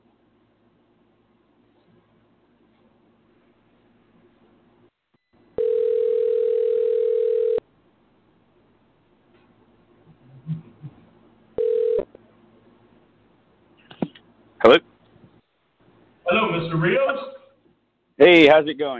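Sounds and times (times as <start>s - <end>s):
telephone ringback tone on an outgoing call: 5.6s - 7.6s, 11.6s - 12.1s
speech: 16.8s - 17.3s, 18.3s - 18.9s.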